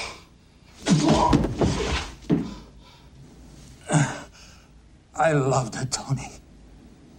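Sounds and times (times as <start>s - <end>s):
man's body crashing down on a stage: 0.8s - 2.6s
speech: 5.2s - 6.4s.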